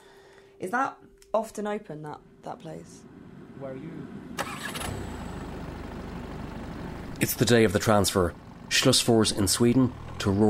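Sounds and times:
speech: 0.6 - 4.6, 7.2 - 10.4
car engine starting on a long snowy driveway: 2.9 - 10.4.

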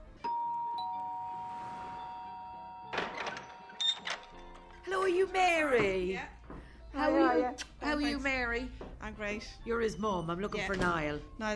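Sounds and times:
doorbell chiming: 0.2 - 4.9
speech: 5.1 - 6.4, 7.0 - 11.5.

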